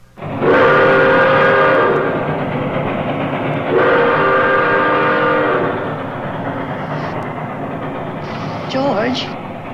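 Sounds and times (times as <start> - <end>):
rumbling rail noise from a sound effect record on a hi-fi: 0.0 - 9.7
train horn blast from a sound effect record on a hi-fi: 0.2 - 2.3, 3.6 - 6.0.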